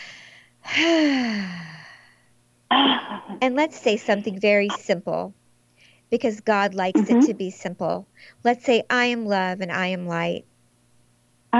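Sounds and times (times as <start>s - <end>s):
deep breath in and out during a guided healing meditation: 0.0s - 2.3s
speech: 0.8s - 1.4s, 3.4s - 5.4s, 6.1s - 10.5s.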